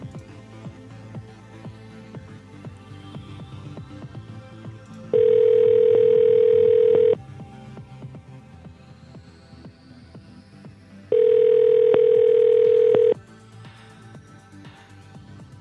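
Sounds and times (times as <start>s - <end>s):
phone call ringback tone: 5.1s - 7.2s, 11.1s - 13.2s.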